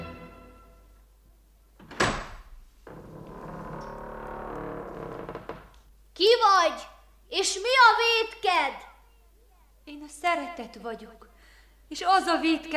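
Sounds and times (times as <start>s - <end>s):
heavy dungeon door in a rock cavern creaking open: 1.8s - 5.7s
speech: 6.2s - 8.9s, 9.9s - 11.2s, 11.9s - 12.7s.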